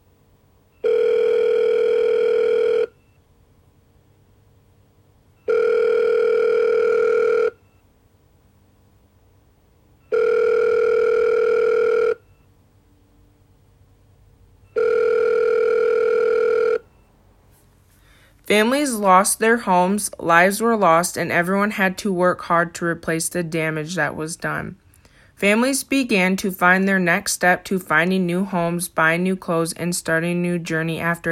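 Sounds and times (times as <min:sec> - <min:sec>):
electronic telephone ringing: 0:00.7 - 0:03.2, 0:05.4 - 0:07.8, 0:10.0 - 0:12.5, 0:14.6 - 0:17.1
speech: 0:18.5 - 0:24.8, 0:25.4 - 0:31.2.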